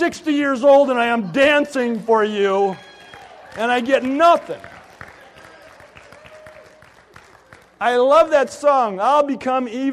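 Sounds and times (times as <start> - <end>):
speech: 0.0 - 2.9, 3.6 - 4.7, 7.8 - 9.9
small handful of people clapping: 1.8 - 8.4.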